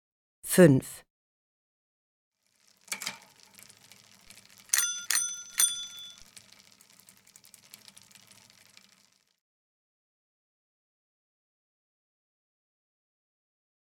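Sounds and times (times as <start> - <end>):
speech: 0.6 - 1.0
bicycle bell ringing: 3.0 - 6.8.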